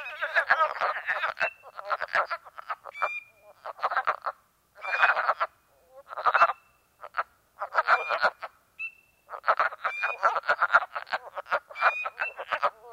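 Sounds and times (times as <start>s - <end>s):
wood frog chorus of hoarse clucking notes: 0.0s - 12.9s.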